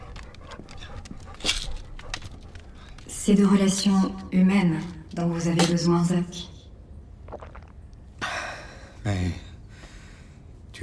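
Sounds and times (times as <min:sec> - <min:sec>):
dog panting: 0:00.0 - 0:03.1
speech: 0:03.3 - 0:06.5.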